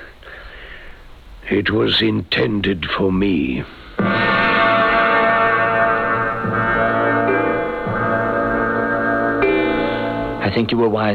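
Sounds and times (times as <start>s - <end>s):
speech: 1.5s - 4.1s, 10.6s - 11.1s
clock striking two o'clock with deep resonant bell strokes: 4.0s - 10.8s.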